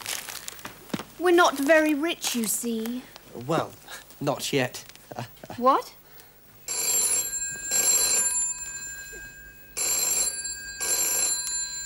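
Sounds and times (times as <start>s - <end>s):
speech: 1.2s - 6.0s
telephone bell ringing in a double pattern: 6.7s - 11.8s.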